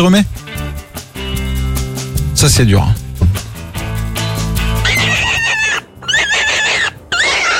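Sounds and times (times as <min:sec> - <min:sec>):
speech: 0:00.0 - 0:00.4, 0:02.4 - 0:03.0
rough low rumbling: 0:01.3 - 0:05.4
rabbit distress cry: 0:04.8 - 0:07.5.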